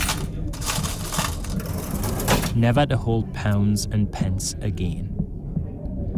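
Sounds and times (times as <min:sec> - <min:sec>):
cash register till slammed shut as a shop closes down: 0:00.0 - 0:02.6
speech: 0:02.6 - 0:05.1.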